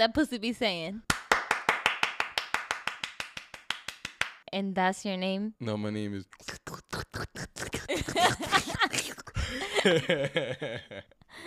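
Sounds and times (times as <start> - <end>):
speech: 0.0 - 1.1, 4.5 - 6.7, 8.0 - 11.4
single pair of hands clapping: 1.1 - 4.4
laughter: 7.9 - 11.4.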